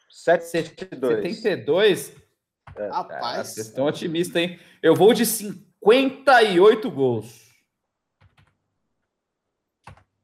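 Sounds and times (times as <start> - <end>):
speech: 0.1 - 2.2, 2.8 - 7.4
typing on a computer keyboard: 8.2 - 8.6, 9.8 - 10.1.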